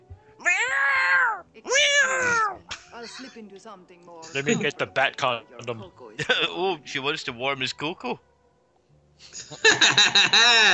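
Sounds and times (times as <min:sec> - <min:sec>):
two cats fighting and yowling: 0:00.4 - 0:03.2
speech: 0:03.1 - 0:08.3, 0:09.2 - 0:10.7
laughter: 0:04.2 - 0:05.0, 0:06.2 - 0:06.7, 0:09.4 - 0:10.7.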